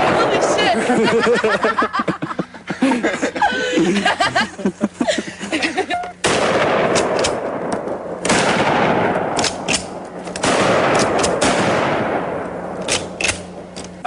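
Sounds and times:
lively voices: 0:00.0 - 0:06.2
people laughing: 0:00.0 - 0:06.2
pump-action shotguns fired in a forest: 0:06.2 - 0:13.6.

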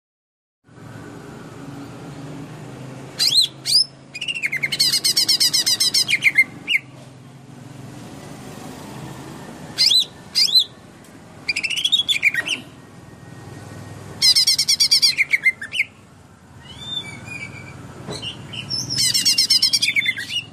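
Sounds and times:
leafbird song in Kalimantan: 0:03.1 - 0:07.0, 0:09.7 - 0:20.5.

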